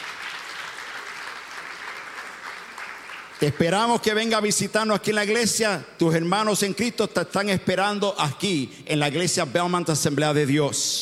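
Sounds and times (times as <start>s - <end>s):
audience applauding: 0.0s - 3.8s
speech: 3.4s - 11.0s.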